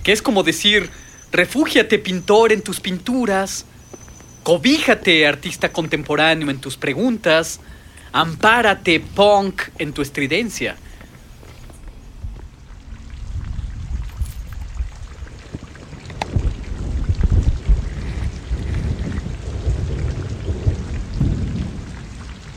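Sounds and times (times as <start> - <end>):
speech: 0.0 - 3.7, 4.4 - 10.9
steady rain pattering: 0.0 - 22.5
low rolling thunder: 13.0 - 22.5.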